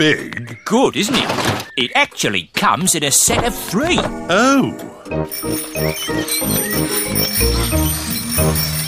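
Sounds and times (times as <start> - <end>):
speech: 0.0 - 8.8
rhythmic thumping: 3.2 - 5.2
several bicycle bells ringing: 5.3 - 8.8.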